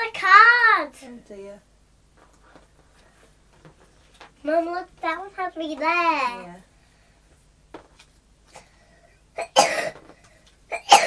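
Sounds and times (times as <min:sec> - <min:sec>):
speech: 0:01.0 - 0:02.4, 0:04.4 - 0:06.7
person coughing: 0:09.4 - 0:10.1, 0:10.7 - 0:11.0.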